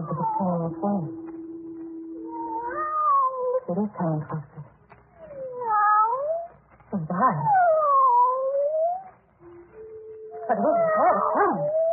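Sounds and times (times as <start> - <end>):
cat yowling: 0.0 - 1.2, 2.2 - 3.6, 5.2 - 6.6, 7.4 - 9.1, 10.4 - 11.9
speech: 0.5 - 1.2, 3.7 - 4.6, 7.2 - 7.6, 10.5 - 11.8.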